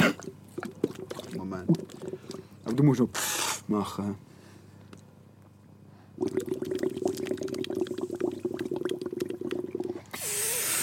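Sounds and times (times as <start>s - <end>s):
water bubbling in a bong: 0.0s - 3.0s, 6.2s - 10.8s
speech: 1.6s - 2.1s, 2.8s - 4.3s
breathy hiss: 10.0s - 10.8s.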